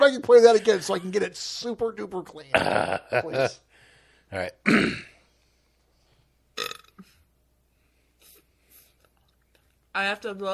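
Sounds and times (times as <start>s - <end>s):
speech: 0.1s - 3.6s, 4.3s - 5.1s, 6.6s - 6.8s, 10.0s - 10.5s
person burping into an object: 2.5s - 3.5s, 4.4s - 5.2s, 6.6s - 7.2s.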